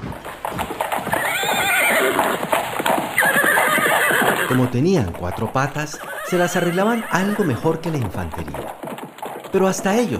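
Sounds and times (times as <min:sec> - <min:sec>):
hooves clip-clopping: 0:00.0 - 0:10.1
horses neighing: 0:00.0 - 0:10.1
speech: 0:04.5 - 0:08.7, 0:09.5 - 0:10.1.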